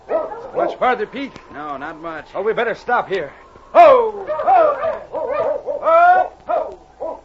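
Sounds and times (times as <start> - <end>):
speech: 0.6 - 5.0
dog yelping and whimpering outdoors in snow: 4.2 - 7.2.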